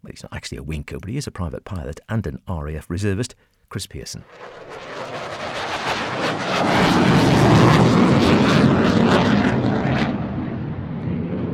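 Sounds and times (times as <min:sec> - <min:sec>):
speech: 0:00.1 - 0:04.9, 0:05.9 - 0:07.3
airplane engine roaring arriving for an evening flying display: 0:04.3 - 0:11.5.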